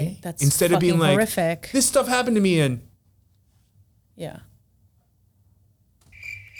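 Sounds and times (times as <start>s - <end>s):
low hum: 0.0s - 4.8s
speech: 0.1s - 2.9s, 4.2s - 4.5s
crickets chirping in a high-pitched trill: 6.2s - 6.5s.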